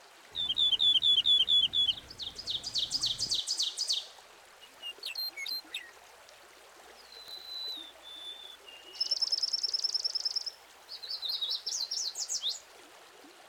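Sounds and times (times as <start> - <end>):
bird song with chirps, trills and buzzy notes: 0.4 - 4.0, 4.6 - 5.9, 7.0 - 12.6.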